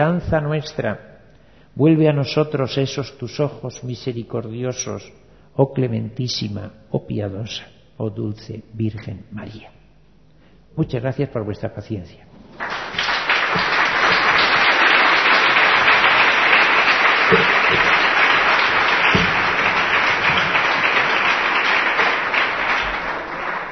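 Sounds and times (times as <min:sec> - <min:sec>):
speech: 0:00.0 - 0:01.1, 0:01.8 - 0:09.8, 0:10.8 - 0:12.7
audience applause at the end of a talk: 0:12.5 - 0:23.6.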